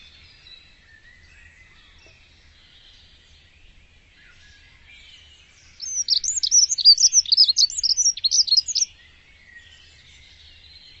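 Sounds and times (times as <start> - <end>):
bird chirping and twittering: 0.0 - 10.9.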